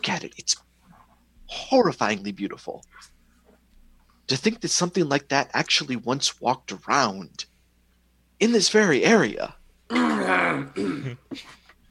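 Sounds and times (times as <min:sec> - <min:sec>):
speech: 0:00.1 - 0:00.7, 0:01.5 - 0:03.1, 0:04.3 - 0:07.5, 0:08.4 - 0:11.6
person clearing throat with something caught in the throat: 0:09.9 - 0:11.6.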